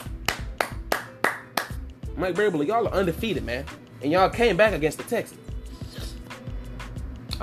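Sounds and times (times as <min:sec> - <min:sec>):
hand claps: 0:00.0 - 0:02.0
speech: 0:02.2 - 0:05.4.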